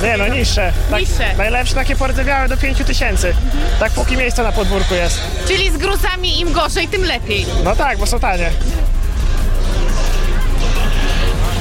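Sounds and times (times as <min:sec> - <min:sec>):
speech: 0:00.0 - 0:08.9
yellow Honda Civic car engine roaring and revving: 0:00.0 - 0:11.5.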